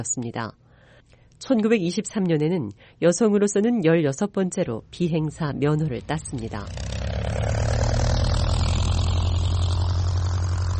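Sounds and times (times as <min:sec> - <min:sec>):
speech: 0:00.0 - 0:06.9
yellow two-seat twin-propeller airplane engine droning: 0:06.2 - 0:10.7.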